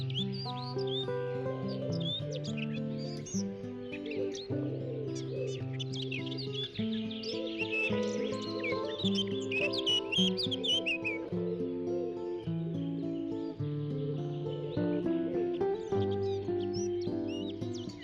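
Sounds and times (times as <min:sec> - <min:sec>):
chorus of birds chirping and twittering: 0:00.0 - 0:18.0.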